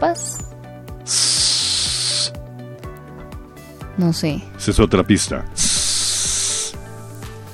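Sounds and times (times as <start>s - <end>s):
speech: 0.1s - 0.4s, 4.0s - 5.7s
pressure cooker hissing steam: 1.1s - 2.3s, 5.6s - 6.8s.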